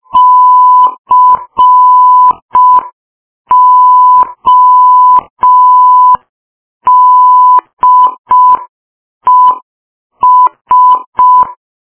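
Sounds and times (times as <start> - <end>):
Morse code beeps: 0.2 - 2.9, 3.5 - 6.2, 6.9 - 8.7, 9.3 - 9.6, 10.2 - 11.6.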